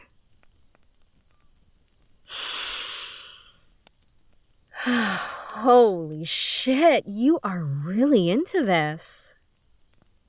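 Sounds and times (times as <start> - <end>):
person sniffing deeply to smell another person: 2.3 - 3.6
speech: 4.9 - 9.4.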